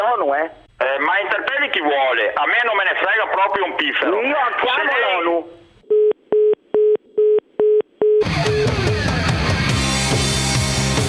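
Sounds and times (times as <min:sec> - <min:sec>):
speech: 0:00.2 - 0:05.6
telephone busy-tone beeps after a caller hangs up: 0:05.9 - 0:08.3
loud music: 0:08.2 - 0:11.0.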